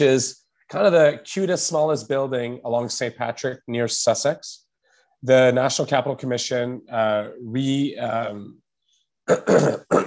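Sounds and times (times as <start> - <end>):
speech: 0.0 - 4.6, 5.2 - 8.6, 9.3 - 10.0
person coughing during a spoken talk: 9.3 - 10.0.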